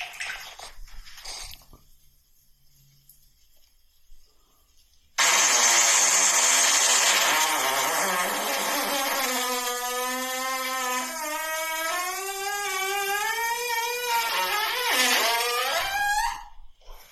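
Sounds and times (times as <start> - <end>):
long loud buzzing fart rising from low to high pitch: 5.2 - 16.6.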